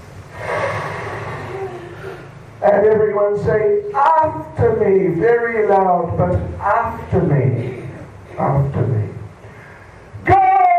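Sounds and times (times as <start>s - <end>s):
crowd of audience members taking a deep breath together: 0.3s - 2.4s, 9.4s - 10.1s
speech: 2.6s - 7.8s, 8.4s - 9.1s.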